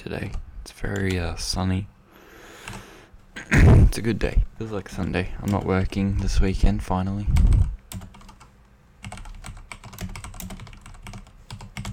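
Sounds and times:
speech: 0.0 - 2.0, 3.4 - 7.7
computer keyboard typing: 2.6 - 2.8, 7.5 - 11.9.

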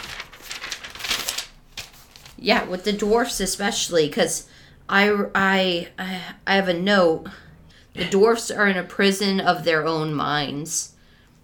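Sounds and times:
paper pages being flipped: 0.0 - 3.3
speech: 2.4 - 7.4, 8.0 - 11.0.

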